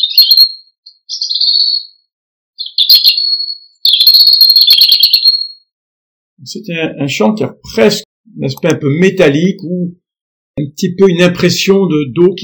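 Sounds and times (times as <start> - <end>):
European robin singing: 0.0 - 5.7
speech: 6.5 - 10.0, 10.6 - 12.4.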